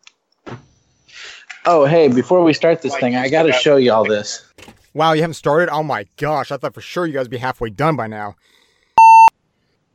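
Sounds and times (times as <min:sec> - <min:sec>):
speech: 0:01.6 - 0:08.6
short electronic beep from an old flip phone: 0:09.0 - 0:09.3.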